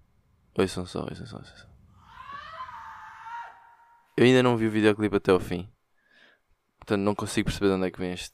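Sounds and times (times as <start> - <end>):
speech: 0.6 - 1.8, 4.2 - 5.7, 6.9 - 8.3
shrill scream at the end of a song: 1.9 - 4.2.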